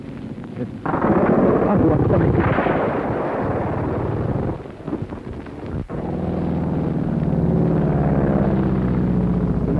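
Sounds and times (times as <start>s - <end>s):
fighter plane engines roaring overhead: 0.0s - 9.7s
speech: 0.6s - 3.1s.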